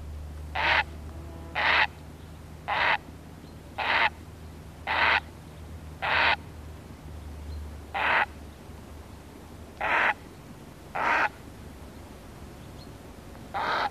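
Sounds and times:
faint low hum: 0:00.0 - 0:13.8
grey heron giving harsh croaks: 0:00.5 - 0:02.0, 0:02.7 - 0:03.1, 0:03.8 - 0:04.2, 0:04.8 - 0:05.3, 0:06.0 - 0:06.4, 0:07.9 - 0:08.4, 0:09.8 - 0:10.2, 0:10.9 - 0:11.4, 0:13.5 - 0:13.8.

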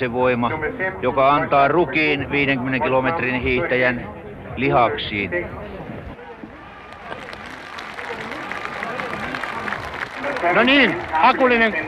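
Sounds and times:
speech: 0:00.0 - 0:05.8, 0:10.4 - 0:11.8
large outdoor crowd of spectators cheering and shouting hurrahs: 0:06.2 - 0:11.8.

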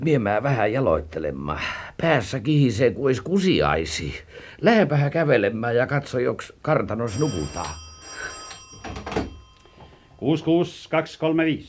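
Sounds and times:
speech: 0:00.0 - 0:07.8, 0:10.2 - 0:11.6
telephone ringing with a bright bell tone: 0:07.1 - 0:10.7.

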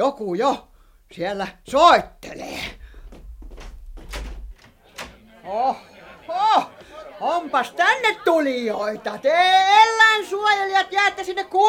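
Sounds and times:
speech: 0:00.0 - 0:02.8, 0:05.5 - 0:11.6
low rumbling background: 0:00.6 - 0:04.7
door being opened with clunks and rattling scrapes: 0:01.7 - 0:05.2
door knocking as it swings free: 0:03.0 - 0:05.1
laughter: 0:04.6 - 0:11.6.

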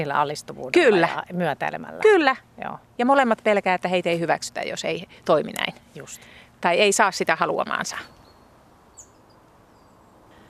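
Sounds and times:
speech: 0:00.0 - 0:08.2
bird chirp: 0:07.7 - 0:10.4.

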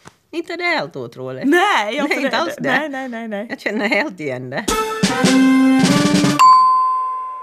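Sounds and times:
speech: 0:00.3 - 0:06.2
two-tone doorbell ding-dong chime: 0:06.4 - 0:07.4.

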